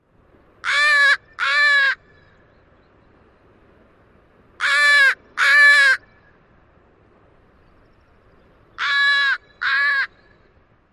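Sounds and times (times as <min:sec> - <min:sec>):
northwestern crow calls: 0:00.6 - 0:02.1, 0:04.6 - 0:06.1, 0:08.8 - 0:10.4.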